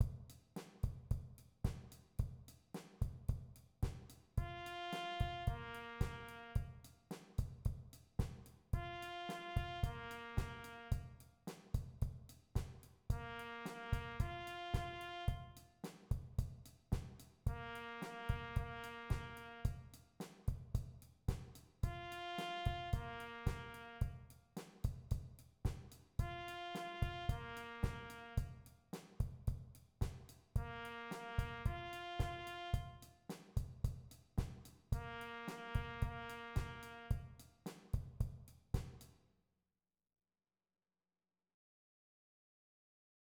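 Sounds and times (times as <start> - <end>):
rock beat: 0.0 - 39.0
trumpet: 4.4 - 6.8, 8.8 - 11.2, 13.2 - 15.7, 17.5 - 19.9, 21.8 - 24.2, 26.2 - 28.6, 30.6 - 33.1, 35.0 - 37.4.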